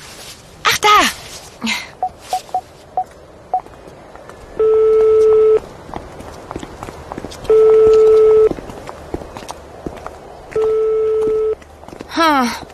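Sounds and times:
speech: 1.6s - 1.8s
mobile phone key tones beeping while dialing: 2.0s - 3.6s, 4.6s - 5.6s, 7.5s - 8.5s
mobile phone ringing tones, call unanswered: 2.0s - 3.6s, 4.6s - 5.6s, 7.5s - 8.5s, 10.6s - 11.6s.

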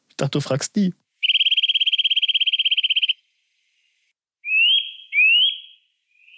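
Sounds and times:
speech: 0.2s - 1.0s
bird answering with two clear rising whistled notes: 1.2s - 3.2s, 4.4s - 6.3s
songbird with black face stripe singing a fast buzzy trill: 1.2s - 6.3s.

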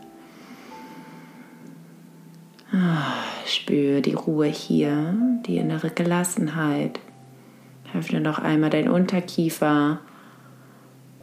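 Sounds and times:
faint sustained tonal hum: 0.0s - 11.2s
slow breathing in and out through both nostrils: 0.1s - 1.7s, 10.1s - 11.0s
speech: 2.8s - 7.1s, 7.9s - 10.1s.

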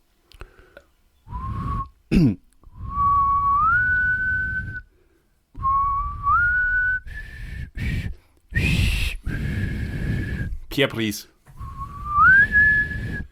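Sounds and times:
person whistling a short tune: 1.3s - 2.0s, 2.7s - 4.9s, 5.6s - 10.6s, 11.6s - 13.2s
speech: 2.1s - 2.4s, 10.8s - 11.4s
throaty coughing noises: 2.1s - 2.5s.

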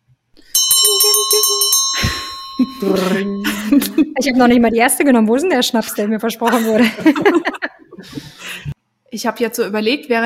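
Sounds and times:
bright bell ringing rapidly to announce the last round: 0.4s - 4.6s
laughter: 0.9s - 4.3s, 5.7s - 8.8s
speech: 2.6s - 8.2s, 9.2s - 10.2s.

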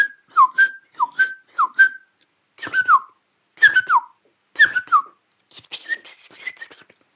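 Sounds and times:
person whistling an imitation of a song thrush: 0.0s - 5.2s.

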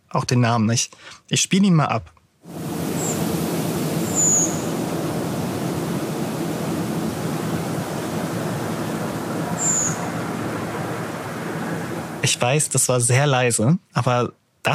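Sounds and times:
speech: 0.1s - 2.7s, 12.3s - 14.7s
steady rushing noise: 2.4s - 12.7s
redwing thrush thin high-pitched seeping calls: 2.9s - 12.3s.

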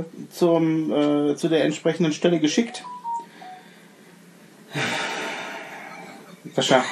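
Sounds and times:
speech: 0.0s - 3.0s, 6.6s - 6.8s
mobile phone electronic beep: 2.7s - 3.7s.

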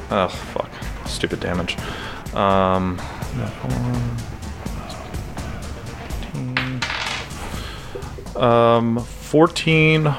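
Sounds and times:
speech: 0.1s - 4.3s, 8.4s - 10.1s
dice clattering and rattling across a table: 6.6s - 7.3s.

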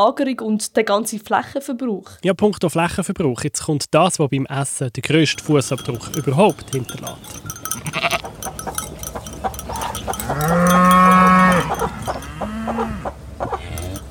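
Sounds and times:
speech: 0.0s - 8.1s
farm sounds: 5.2s - 14.0s
faint clanking: 5.3s - 12.5s, 13.7s - 14.0s
cow mooing: 7.8s - 14.0s.

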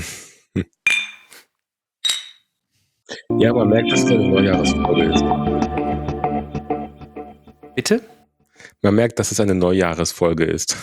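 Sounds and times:
speech: 0.0s - 0.8s, 3.1s - 5.6s, 7.8s - 8.1s, 8.8s - 10.8s
glasses clinking in a toast: 0.9s - 1.3s, 2.0s - 2.4s.

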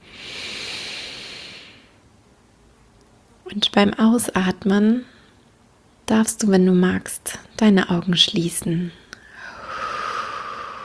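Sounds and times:
long slow deep inhalation into the belly: 0.0s - 2.0s, 9.2s - 10.8s
speech: 3.5s - 5.1s, 6.1s - 9.0s.

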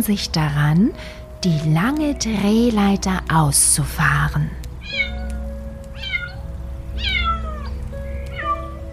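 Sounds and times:
speech: 0.0s - 5.1s
frightened white kitten meowing up high: 4.8s - 6.4s, 7.0s - 7.7s, 8.3s - 8.8s.

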